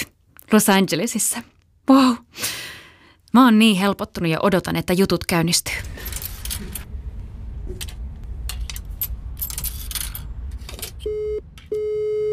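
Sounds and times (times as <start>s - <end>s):
speech: 0.5s - 2.2s, 3.4s - 6.2s
phone call beeps on a call going to voicemail: 11.0s - 12.3s.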